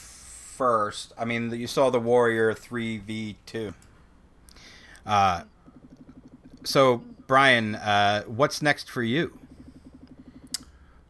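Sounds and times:
speech: 0.6s - 3.9s, 5.0s - 5.5s, 6.6s - 9.4s
phone vibrating against a hard workbench: 4.9s - 8.4s, 9.0s - 11.0s.

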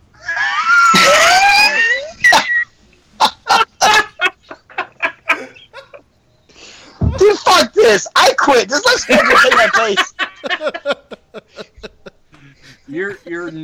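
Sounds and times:
wild dog howling: 0.0s - 2.6s
laughter: 0.2s - 13.6s
speech: 7.9s - 11.0s, 12.9s - 13.6s.

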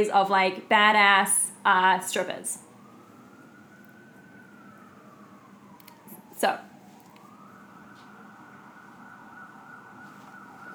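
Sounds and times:
speech: 0.0s - 2.6s, 6.4s - 6.7s
ambulance siren sound effect: 0.0s - 10.7s.

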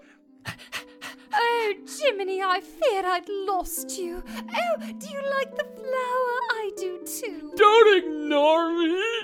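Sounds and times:
dog panting in breathy huffs: 0.4s - 1.3s
speech: 2.1s - 9.2s.

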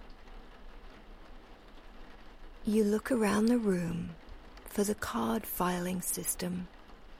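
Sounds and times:
steady soft rain falling: 0.0s - 7.1s
speech: 2.6s - 4.2s, 4.8s - 6.8s.

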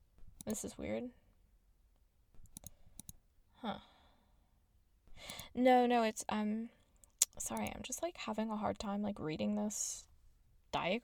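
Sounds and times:
speech: 0.5s - 1.2s, 3.6s - 3.9s, 5.2s - 6.8s, 7.4s - 10.1s, 10.7s - 11.0s
mouse clicks while selecting a section of an orchard on a map: 2.5s - 3.2s, 5.3s - 5.5s, 7.0s - 7.8s.

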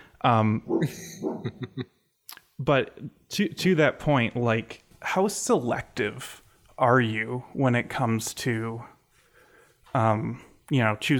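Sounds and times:
speech: 0.2s - 2.0s, 2.6s - 8.9s, 9.9s - 11.1s
dog barking at night: 0.7s - 1.5s.

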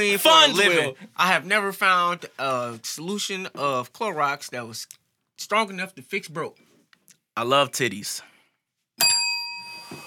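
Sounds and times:
speech: 0.0s - 6.7s, 7.4s - 8.3s
single bright metallic bell strike ringing: 9.0s - 10.0s.

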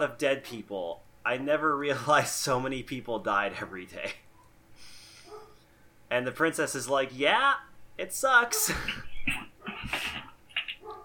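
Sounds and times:
speech: 0.0s - 4.2s, 6.1s - 9.1s
dogs barking at home: 5.2s - 5.6s, 10.8s - 11.0s.

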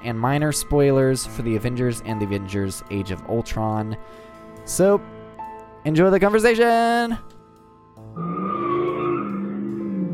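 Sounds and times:
speech: 0.0s - 5.2s, 5.8s - 7.4s, 8.0s - 8.5s
tires squealing as a car peels out outside: 8.2s - 10.0s.

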